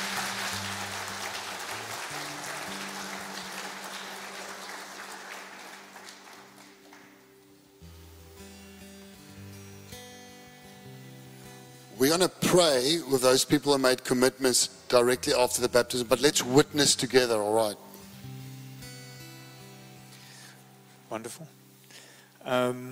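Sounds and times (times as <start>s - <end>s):
audience clapping for baptism candidates: 0.0s - 7.4s
low sustained musical tones: 0.1s - 21.8s
speech: 12.0s - 17.9s, 21.2s - 21.6s, 22.5s - 22.9s.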